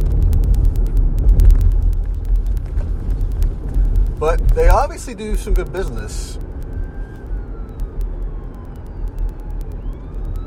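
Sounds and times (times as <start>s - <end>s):
steady low rumble of street traffic: 0.0s - 10.4s
speech: 4.2s - 6.5s
ambulance siren wailing: 4.2s - 10.4s.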